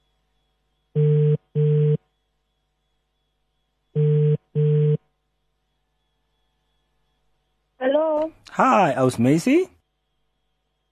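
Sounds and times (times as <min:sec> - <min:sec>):
outgoing phone call double-ring ringing tone: 0:01.0 - 0:02.1, 0:03.9 - 0:05.1
speech: 0:08.6 - 0:09.8.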